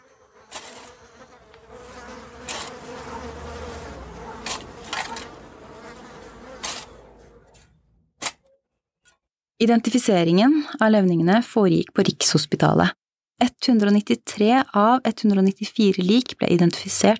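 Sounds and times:
many flies buzzing in a swarm: 0.0s - 7.2s
speech: 9.6s - 17.1s.

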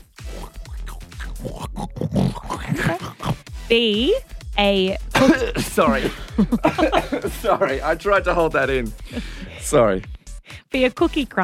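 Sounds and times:
person imitating a pig with snorting grunts and oinks: 0.2s - 3.5s
laughter: 2.6s - 3.4s, 5.2s - 10.1s
speech: 3.7s - 11.4s.

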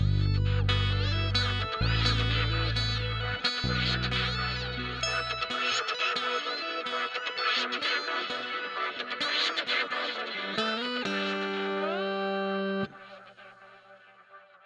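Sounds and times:
low droning tones: 0.0s - 5.4s
noisy effects-laden distorted electric guitar playing sustained notes and chords: 0.0s - 14.0s.

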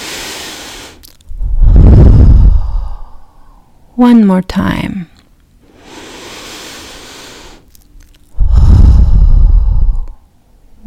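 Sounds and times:
person breathing in and out during a guided breathing exercise: 0.0s - 4.0s, 5.6s - 7.7s, 8.3s - 10.5s
speech: 4.0s - 5.1s.

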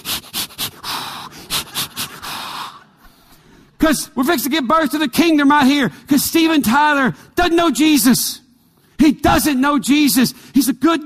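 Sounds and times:
person performing patterned Lamaze breathing: 0.0s - 3.8s
speech: 3.8s - 8.4s, 9.0s - 11.0s.

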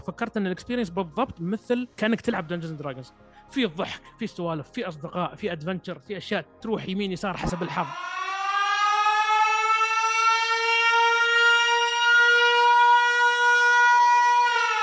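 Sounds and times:
speech: 0.0s - 8.2s
loud warning siren droning: 7.4s - 14.8s.

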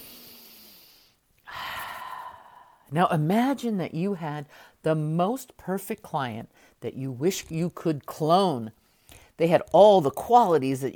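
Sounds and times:
person taking a deep breath during a guided relaxation exercise: 0.0s - 2.9s
speech: 2.9s - 8.8s, 9.4s - 10.9s.

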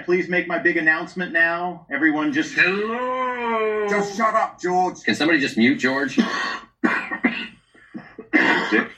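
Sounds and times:
speech: 0.0s - 7.5s, 8.4s - 8.9s
harsh coughing: 6.0s - 8.9s.

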